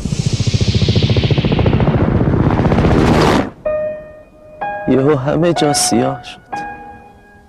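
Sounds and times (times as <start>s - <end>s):
helicopter rotor chop overhead: 0.0s - 3.6s
speech: 5.0s - 6.4s.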